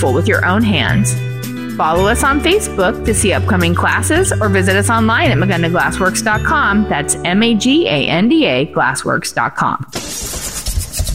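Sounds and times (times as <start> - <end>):
speech: 0.0 - 10.6
struggling diesel truck engine running: 10.0 - 11.1.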